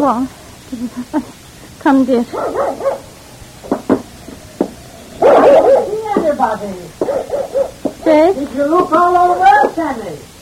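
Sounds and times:
speech: 0.0 - 3.1, 6.4 - 10.3
dog barking and whining yelps: 2.3 - 3.3, 4.2 - 7.9.

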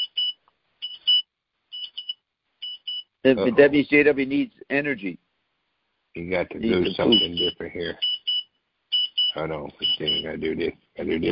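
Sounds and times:
electronic alarm beeping in short high-pitched bursts: 0.0 - 3.1, 6.6 - 10.3
speech: 3.2 - 5.2, 6.2 - 8.1, 9.3 - 11.3
laughter: 6.2 - 7.9.

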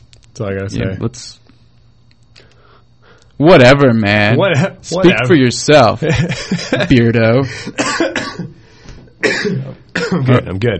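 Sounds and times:
speech: 0.4 - 1.4, 3.4 - 8.6, 9.2 - 10.7
laughter: 6.0 - 7.7
person coughing hard in a coughing fit: 7.6 - 8.6, 9.2 - 10.4.

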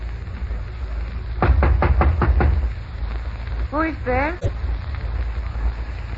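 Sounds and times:
steady hiss of rain: 0.0 - 6.1
knocking on a hotel room door: 1.4 - 2.5.

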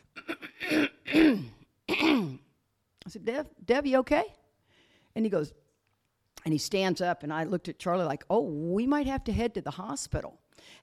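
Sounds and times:
person imitating a man clearing his throat: 0.0 - 2.5
speech: 3.1 - 4.4, 5.2 - 5.6, 6.4 - 10.8.

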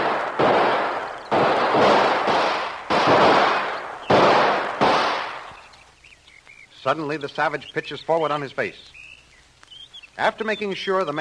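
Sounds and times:
gunshots exchanged in a shootout: 0.0 - 5.7
speech: 6.9 - 9.0, 10.2 - 11.1.

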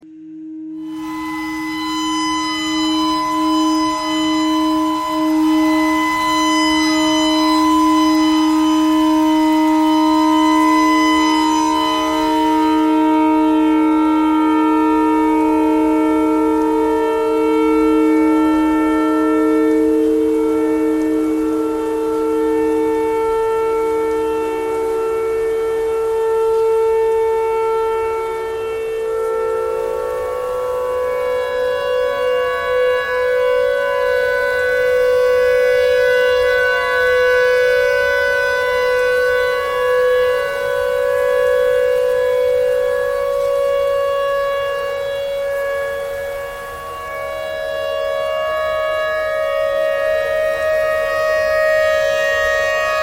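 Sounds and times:
noise: 0.0 - 53.0
tornado siren: 0.0 - 53.0
clarinet notes: 0.5 - 53.0.

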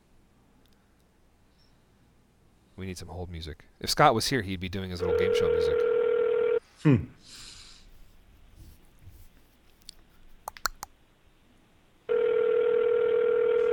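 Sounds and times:
speech: 2.8 - 6.0, 6.8 - 7.5
outgoing Skype call ringing tone: 5.0 - 6.6, 12.1 - 13.7.

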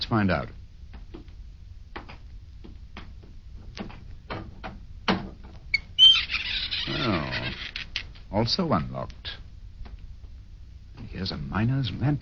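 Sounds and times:
speech: 0.1 - 0.6, 8.3 - 9.4, 11.2 - 12.2
soft footsteps: 0.8 - 4.3, 8.2 - 11.2
crude door of new wood creaking open: 5.1 - 8.1.

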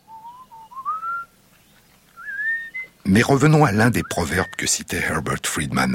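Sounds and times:
melodious whistle of hunters calling a honeyguide bird in Tanzania: 0.0 - 1.3, 2.2 - 3.0, 4.0 - 4.7
speech: 3.1 - 5.9.

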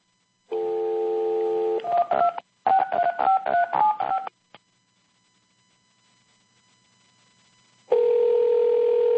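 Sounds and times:
telephone dial tone: 0.5 - 4.3, 7.9 - 9.1.

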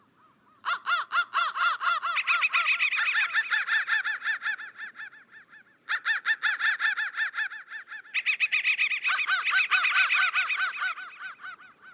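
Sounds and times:
crows cawing: 0.2 - 11.9.

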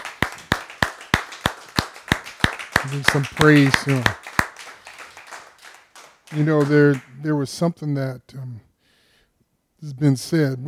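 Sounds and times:
hand clapping at a praise gathering: 0.0 - 7.2
speech: 2.8 - 4.2, 6.3 - 8.7, 9.8 - 10.6
faint hiss: 6.2 - 10.6.

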